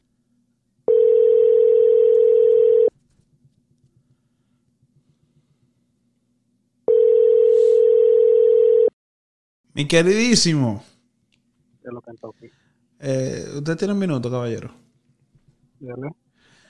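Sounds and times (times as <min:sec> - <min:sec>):
telephone call ringing out on the line, long buzzing tones: 0:00.9 - 0:02.9, 0:06.9 - 0:09.0
speech: 0:09.8 - 0:10.9, 0:12.1 - 0:14.8, 0:15.8 - 0:16.2.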